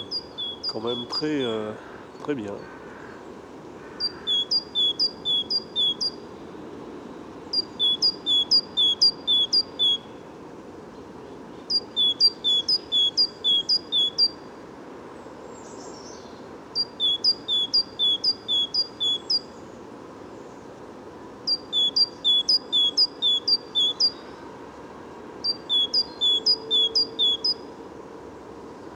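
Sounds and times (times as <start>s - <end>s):
bird singing high in a tree in a forest: 0.0s - 3.2s, 3.9s - 6.2s, 7.4s - 10.2s, 11.2s - 14.4s, 15.6s - 19.6s, 21.5s - 24.4s, 25.4s - 27.6s
speech: 0.7s - 2.8s.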